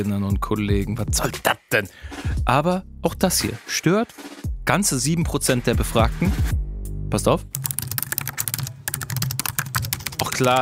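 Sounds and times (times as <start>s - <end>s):
speech: 0.0s - 7.6s, 10.2s - 10.5s
typing on a computer keyboard with extra loud keys in an office: 7.5s - 10.5s.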